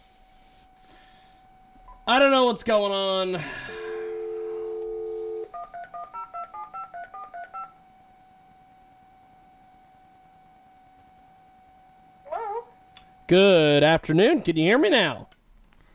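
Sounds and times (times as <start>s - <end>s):
speech: 2.1s - 3.8s, 13.3s - 15.3s
faint steady telephone tone: 3.4s - 12.0s
telephone dial tone from a call being placed: 3.8s - 7.7s.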